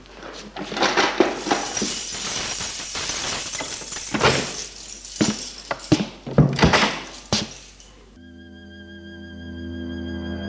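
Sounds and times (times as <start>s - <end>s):
keys jingling: 0.7s - 8.2s.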